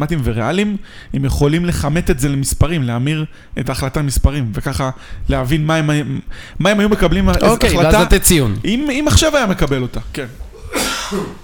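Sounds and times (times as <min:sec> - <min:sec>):
speech: 0:00.0 - 0:11.4
sneeze: 0:10.6 - 0:11.4.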